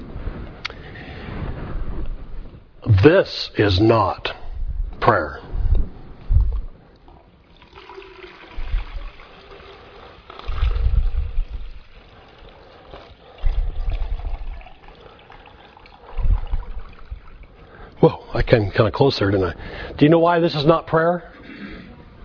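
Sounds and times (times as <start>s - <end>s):
speech: 3.0s - 4.4s, 5.0s - 5.5s, 18.5s - 21.6s
water splashing and trickling into a container: 7.4s - 18.0s.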